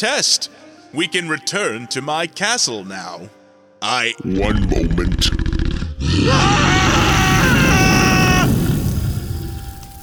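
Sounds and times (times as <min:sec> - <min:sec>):
speech: 0:00.0 - 0:06.7
dragon breathing fire: 0:05.1 - 0:10.0.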